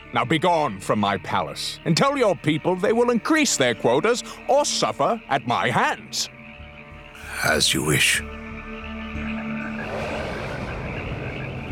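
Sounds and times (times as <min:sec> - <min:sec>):
speech: 0:00.1 - 0:06.4, 0:07.4 - 0:08.4
frogs croaking in Egypt: 0:01.0 - 0:09.9
bullfrogs droning in Egypt: 0:02.7 - 0:11.7.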